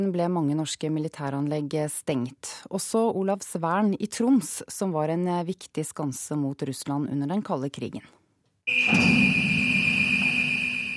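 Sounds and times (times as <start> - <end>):
speech: 0.0 - 9.4
high-pitched warning alarm as submarine gate opens at Olavsvern military base: 8.7 - 10.9.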